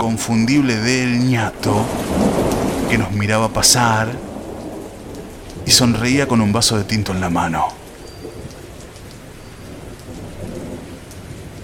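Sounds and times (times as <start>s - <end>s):
speech: 0.0s - 4.3s, 5.7s - 7.8s
heavy rain: 0.0s - 11.6s
low rumbling: 0.0s - 11.6s.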